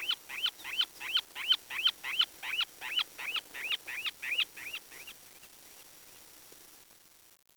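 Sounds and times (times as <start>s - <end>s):
bird call of wavering up-and-down whistles: 0.0s - 5.5s.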